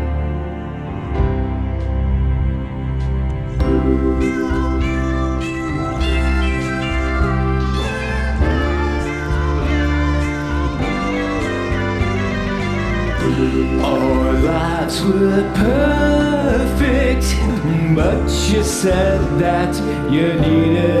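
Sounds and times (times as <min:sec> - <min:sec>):
dense steady musical backing: 0:00.0 - 0:20.9
cat meowing: 0:03.8 - 0:14.6
speech: 0:18.0 - 0:20.9.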